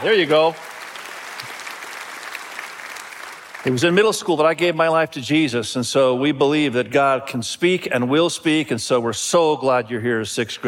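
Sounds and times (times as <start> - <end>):
speech: 0.0 - 0.7, 3.6 - 10.6
audience applause at a church service welcoming new sixth graders: 0.0 - 4.2.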